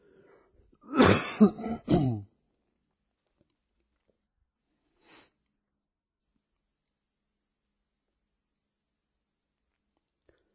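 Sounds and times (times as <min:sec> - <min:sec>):
person clearing throat roughly: 0:00.8 - 0:02.3
person coughing: 0:00.8 - 0:02.3
speech: 0:01.4 - 0:02.0.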